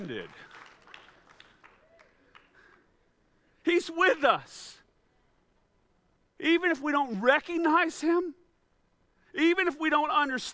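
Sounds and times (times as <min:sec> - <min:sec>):
speech: 0:00.0 - 0:00.6, 0:03.6 - 0:04.8, 0:06.4 - 0:08.4, 0:09.3 - 0:10.5
audience clapping: 0:00.0 - 0:02.9.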